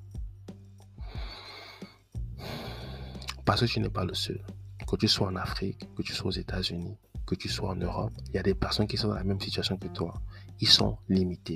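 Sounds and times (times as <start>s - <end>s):
soft deep breath: 1.0s - 3.3s
speech: 3.5s - 11.5s.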